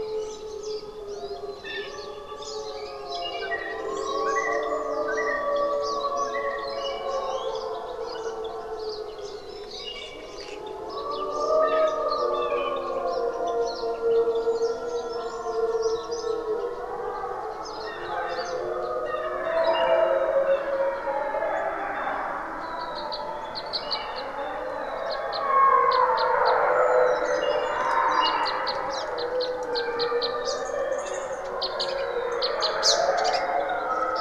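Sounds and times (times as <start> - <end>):
wolf pack howling: 0.0 - 34.2.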